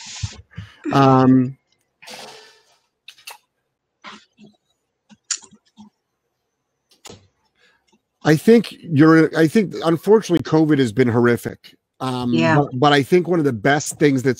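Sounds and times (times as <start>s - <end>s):
short voice: 0.1s - 1.5s, 12.0s - 13.0s
speech: 0.1s - 1.6s, 8.2s - 14.3s.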